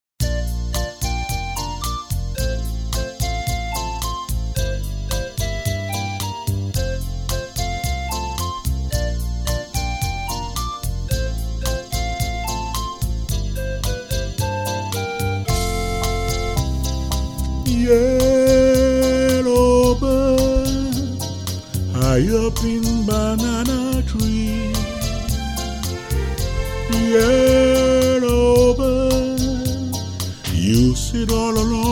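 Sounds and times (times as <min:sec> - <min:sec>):
steel band steel drums playing: 0:00.4 - 0:29.7
person singing: 0:17.6 - 0:31.9.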